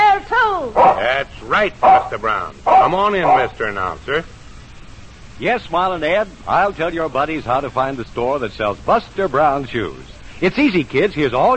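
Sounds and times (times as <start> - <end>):
dog barking in short yaps: 0.8 - 1.2, 1.8 - 3.6
speech: 1.1 - 4.4, 5.4 - 11.5.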